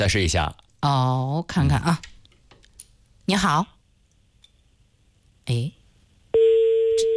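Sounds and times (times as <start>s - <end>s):
speech: 0.0s - 2.1s, 3.3s - 3.8s, 5.5s - 7.1s
telephone ringback tone while calling a property management office: 6.4s - 7.1s.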